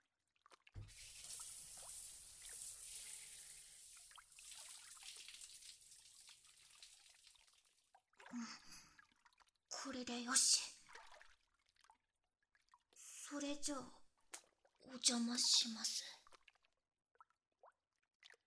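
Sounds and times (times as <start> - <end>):
shower water drips and splashes: 0.3 - 9.6, 10.4 - 13.0, 14.2 - 18.4
shower water spraying: 0.8 - 7.3
speech: 9.8 - 10.7, 13.3 - 14.0, 14.9 - 16.2.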